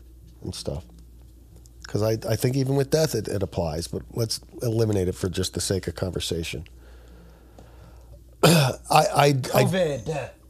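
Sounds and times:
speech: 0.4s - 1.0s, 1.9s - 6.8s, 8.4s - 10.4s
harsh throaty cough: 8.4s - 8.9s.

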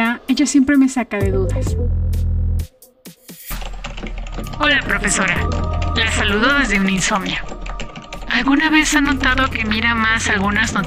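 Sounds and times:
speech: 0.3s - 2.2s, 4.6s - 7.5s, 8.4s - 10.8s
typing on a computer keyboard: 3.5s - 10.8s.

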